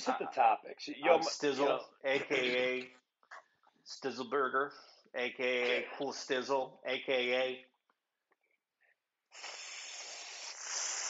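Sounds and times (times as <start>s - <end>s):
speech: 0.0s - 3.0s, 3.9s - 7.7s, 9.3s - 9.6s
voice imitating a snake hiss: 9.3s - 11.0s.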